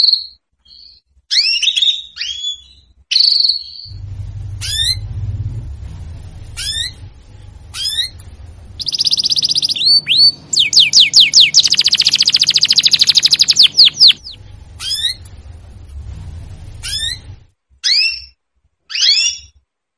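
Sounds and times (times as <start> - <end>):
female canary calling with curved chirps and a buzzy trill: 0.0 - 19.6
low rumbling noise: 3.9 - 17.8.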